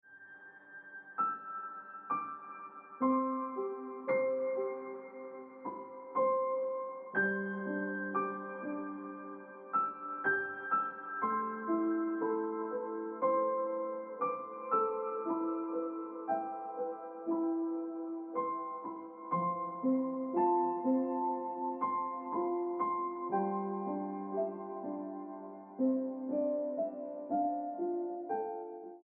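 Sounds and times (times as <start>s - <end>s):
piano ringtone music: 0.1s - 29.0s.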